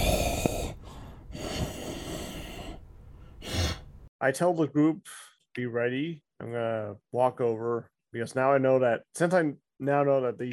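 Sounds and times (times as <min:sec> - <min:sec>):
voice imitating the raspy snorting breathing of a sleeping spiky creature: 0:00.0 - 0:02.8
speech: 0:04.2 - 0:10.5.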